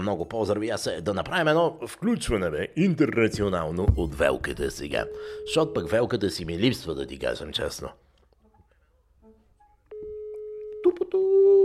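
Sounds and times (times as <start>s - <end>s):
speech: 0.0s - 8.0s
outgoing international phone call ringing tone on the line: 4.9s - 6.2s, 9.9s - 11.2s.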